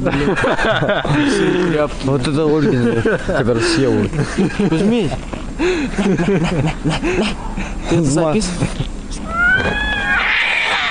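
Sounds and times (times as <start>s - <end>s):
laughter: 0.0s - 1.8s, 2.6s - 7.8s
speech: 0.0s - 8.8s
two cats meowing: 9.2s - 10.8s.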